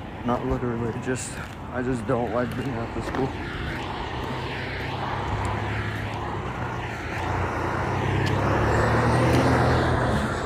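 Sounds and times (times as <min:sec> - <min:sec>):
speech: 0:00.2 - 0:03.8
heavy semi-truck engine and road roar driving past: 0:03.6 - 0:10.4.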